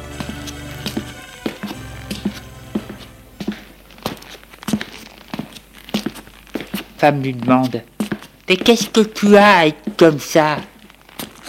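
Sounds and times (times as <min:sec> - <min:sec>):
soft musical tone: 0:00.0 - 0:03.9
footsteps walking indoors on a hard floor: 0:00.0 - 0:11.4
speech: 0:07.0 - 0:07.9, 0:08.5 - 0:10.7.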